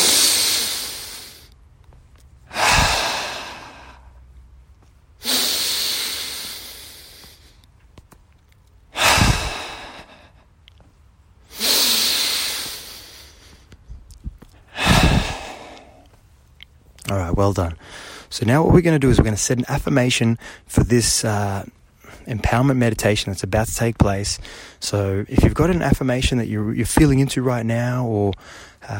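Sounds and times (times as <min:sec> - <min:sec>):
person taking deep breaths during a meditation: 0:00.0 - 0:01.6, 0:02.4 - 0:04.3, 0:05.2 - 0:07.7, 0:08.9 - 0:10.5, 0:11.5 - 0:13.7, 0:14.5 - 0:16.2, 0:17.8 - 0:18.3, 0:28.3 - 0:28.9
speech: 0:17.4 - 0:28.9.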